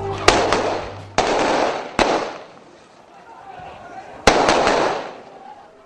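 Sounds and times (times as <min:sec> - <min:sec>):
gunshots fired by police outdoors: 0:00.2 - 0:02.6, 0:04.2 - 0:05.3
murmur of voices: 0:03.1 - 0:05.8.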